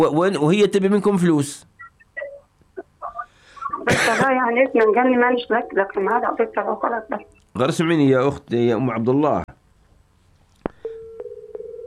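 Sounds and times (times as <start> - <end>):
speech: 0.0 - 1.7, 3.8 - 9.4
telephone dial tone after the line cuts off: 10.8 - 11.8
telephone line click as the line cuts off: 10.8 - 11.8.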